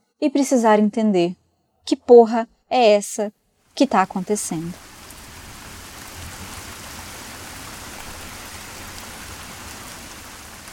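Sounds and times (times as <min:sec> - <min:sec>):
speech: 0:00.2 - 0:04.9
steady rain pattering on a surface: 0:03.6 - 0:10.7.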